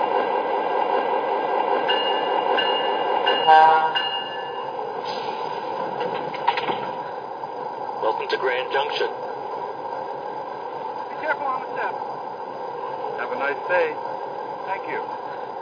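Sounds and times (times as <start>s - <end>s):
passenger train wheels rumbling on rails pulling into station: 0.0s - 15.6s
passenger train clanks: 5.1s - 7.0s
speech: 13.4s - 14.1s.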